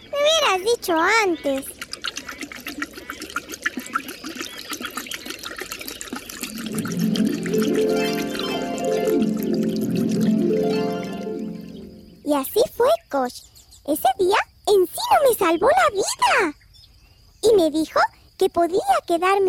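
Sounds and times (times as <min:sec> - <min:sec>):
small stream of running water trickling: 0:00.0 - 0:12.2
speech: 0:00.6 - 0:01.8, 0:12.3 - 0:16.6, 0:17.4 - 0:19.4.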